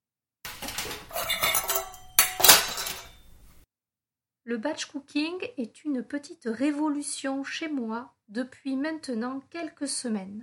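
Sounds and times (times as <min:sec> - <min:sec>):
metal pots and pans clattering and clanging: 0:00.5 - 0:03.5
speech: 0:04.5 - 0:10.4.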